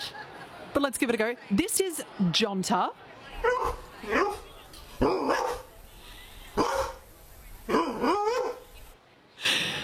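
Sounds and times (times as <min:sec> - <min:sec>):
speech: 0:00.8 - 0:04.4
dog barking: 0:03.4 - 0:05.7, 0:06.6 - 0:07.0, 0:07.7 - 0:08.7.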